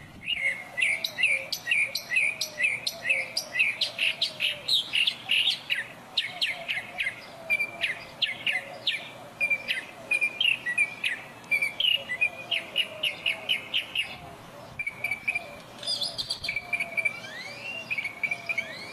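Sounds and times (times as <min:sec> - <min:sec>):
Northern mockingbird singing: 0:00.0 - 0:18.9.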